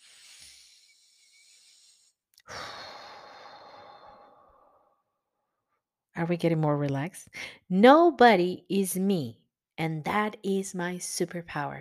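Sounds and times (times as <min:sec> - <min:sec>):
slow deep breath in and long exhale: 0:00.0 - 0:05.3
speech: 0:06.2 - 0:11.8.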